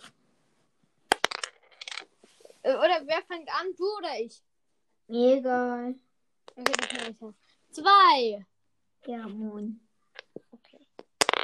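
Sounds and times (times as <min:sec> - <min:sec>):
die rolled onto a hard table: 0:01.1 - 0:02.0, 0:06.5 - 0:07.1, 0:11.0 - 0:11.4
speech: 0:02.7 - 0:04.5, 0:05.1 - 0:09.8.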